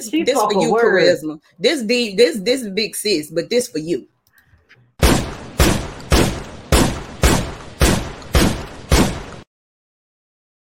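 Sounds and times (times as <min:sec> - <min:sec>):
speech: 0:00.0 - 0:04.1
gunshots sound effect: 0:05.0 - 0:09.5.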